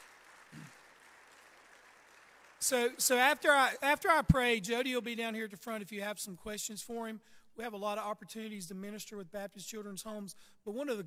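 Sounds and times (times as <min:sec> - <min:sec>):
congregation clapping, heard faintly and at a distance: 0:00.0 - 0:03.4
speech: 0:02.6 - 0:11.0.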